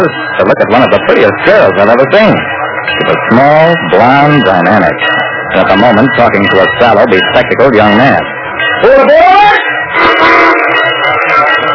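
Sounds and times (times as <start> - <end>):
speech: 0.0 - 9.4
train mechanical rumble: 0.0 - 11.7
train whistle blast: 9.5 - 11.5.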